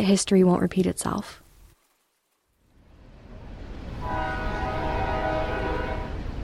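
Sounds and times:
speech: 0.0s - 1.4s
train rumbling with heavy rolling noise of the cars: 3.0s - 6.4s
long steady train horn blast: 4.0s - 6.4s.

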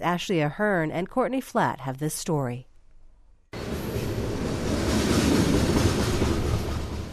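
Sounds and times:
speech: 0.0s - 2.7s
freight train of uncovered coal cars rumbling past along the Bellingham waterfront: 3.6s - 7.1s.

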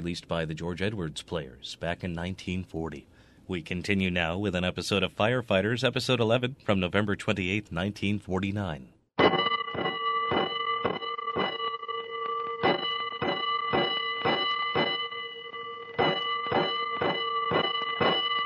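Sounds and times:
speech: 0.0s - 9.3s
fire alarm bell ringing: 9.2s - 18.4s.

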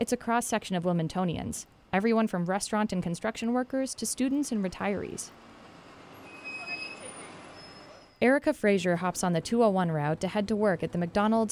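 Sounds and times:
speech: 0.0s - 5.5s, 8.2s - 11.4s
buses idling at a downtown bus depot on a windy morning: 4.4s - 8.1s.

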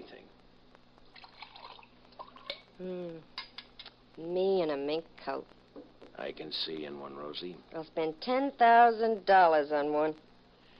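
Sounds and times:
coffee pouring into a cup: 1.1s - 2.7s
speech: 2.8s - 3.3s, 4.2s - 10.3s.

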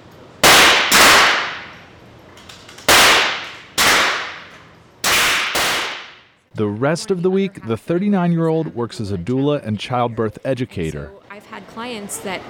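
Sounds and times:
gunshots on a gun club shooting range: 0.4s - 1.8s, 2.9s - 6.2s
speech: 6.6s - 12.4s.

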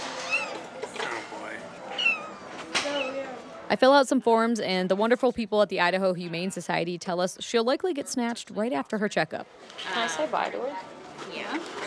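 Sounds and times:
cat mewing: 0.2s - 0.6s, 1.9s - 3.3s
speech: 3.7s - 11.7s.

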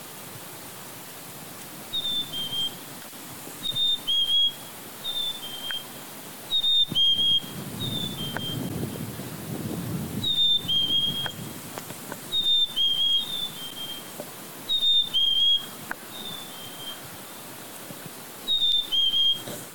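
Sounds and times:
Black-capped Chickadee spring song whistled paired notes: 1.9s - 2.9s, 3.6s - 8.9s, 10.2s - 11.5s, 12.3s - 17.6s, 18.4s - 19.6s.

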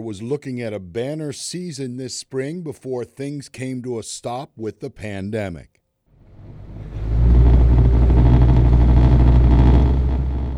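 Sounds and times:
speech: 0.0s - 5.8s
small flat-bottomed boat outboard motor starting and running: 6.3s - 10.5s.

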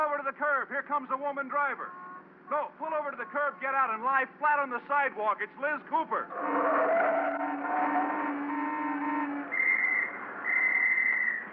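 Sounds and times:
speech: 0.0s - 7.0s, 7.6s - 8.4s
low humming drone: 6.3s - 10.5s
police officer directing street traffic blowing long shrill police whistle blasts: 6.3s - 11.5s.

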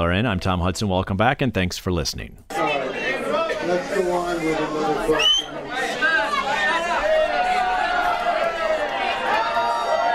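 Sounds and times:
speech: 0.0s - 2.6s, 3.6s - 5.3s
agitated audience shouting at a mayoral debate in Miami Beach: 2.5s - 10.1s.

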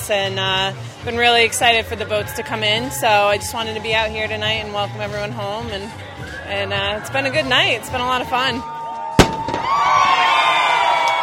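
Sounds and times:
crowd noise at ocean sailing race finish in port: 0.0s - 11.2s
speech: 0.1s - 8.8s
cannon blast marking first-place finishers of an ocean sailing race: 9.2s - 9.8s.

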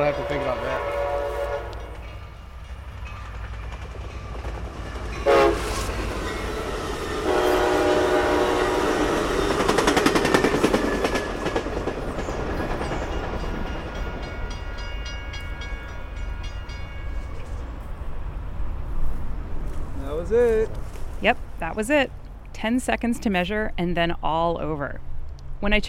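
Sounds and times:
speech: 0.0s - 1.0s, 21.2s - 25.8s
train horn with sustained harmonic tones: 0.0s - 2.1s, 5.2s - 9.6s
train passing by at speed: 0.0s - 23.6s
rumble and rattling clatter of train cars: 1.8s - 7.2s, 9.0s - 17.8s.

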